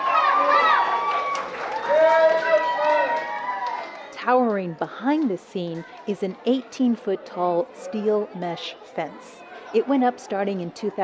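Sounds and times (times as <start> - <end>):
crowd of children cheering and shouting outdoors in a neighborhood at Christmas: 0.0 - 4.1
speech: 4.2 - 11.0.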